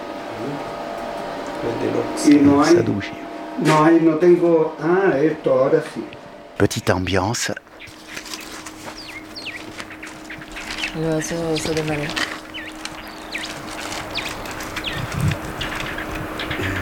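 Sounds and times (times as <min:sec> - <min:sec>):
steady outdoor hum in the Elqui Valley, Chile: 0:00.0 - 0:16.7
speech: 0:01.6 - 0:07.9, 0:11.0 - 0:12.3
small bird chirping in the Elqui Valley, Chile: 0:07.7 - 0:16.7.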